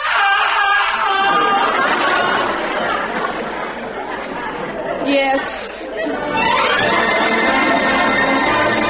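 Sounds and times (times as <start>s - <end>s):
man screaming harsh and strained: 0.0s - 1.8s
laughter: 0.9s - 8.8s.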